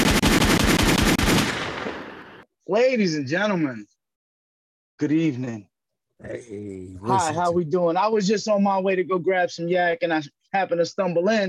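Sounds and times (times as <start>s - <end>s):
rapid burst of machine gun-like gunshots: 0.0s - 2.4s
speech: 2.7s - 4.0s, 5.0s - 11.4s.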